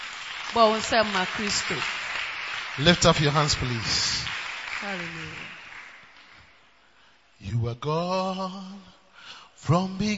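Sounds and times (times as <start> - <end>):
audience clapping hands: 0.0 - 6.8
speech: 0.5 - 2.0, 2.8 - 4.2, 4.8 - 5.5, 7.4 - 9.0, 9.6 - 10.1.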